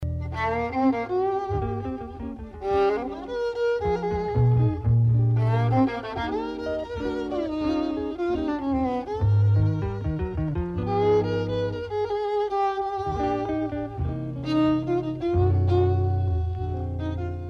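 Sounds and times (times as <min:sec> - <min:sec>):
jazz music: 0:00.0 - 0:17.4
violin playing: 0:00.0 - 0:17.4.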